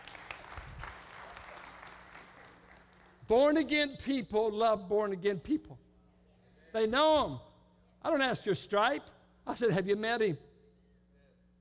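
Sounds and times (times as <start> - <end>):
crowd applauding in a roomy space: 0.0 - 3.3
speech: 3.3 - 5.8, 6.7 - 10.5.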